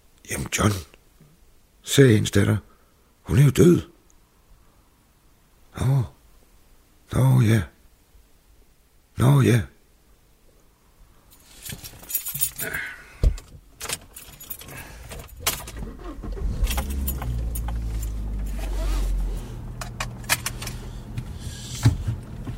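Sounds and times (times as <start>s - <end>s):
speech: 0.3s - 0.9s, 1.8s - 2.7s, 3.3s - 3.9s, 5.8s - 6.2s, 7.1s - 7.7s, 9.2s - 9.7s
keys jingling: 11.3s - 12.8s, 13.8s - 15.8s, 16.4s - 18.6s
car engine rumble as the car drives off: 14.0s - 22.5s.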